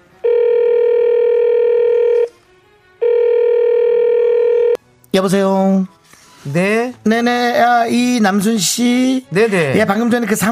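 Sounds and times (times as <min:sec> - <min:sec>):
phone line ringback tone: 0:00.2 - 0:02.3, 0:03.0 - 0:04.8
speech: 0:05.2 - 0:10.5.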